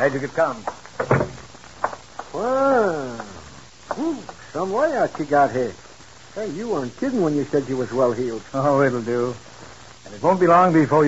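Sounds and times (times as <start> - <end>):
speech: 0.0 - 1.3, 2.4 - 3.3, 4.0 - 5.8, 6.4 - 9.5, 10.1 - 11.0
door creaking open: 1.0 - 1.5.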